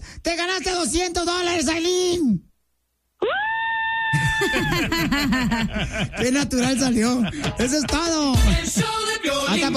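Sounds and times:
speech: 0:00.3 - 0:02.5, 0:04.4 - 0:09.7
woman screaming with excitement for a radio promo: 0:03.2 - 0:04.8
woman shrieking and squealing: 0:03.2 - 0:04.8
laughter: 0:04.1 - 0:08.9.

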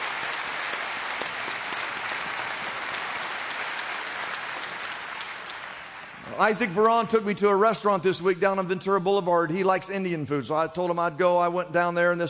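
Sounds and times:
worship congregation applause: 0:00.0 - 0:07.3
speech: 0:06.3 - 0:12.2.

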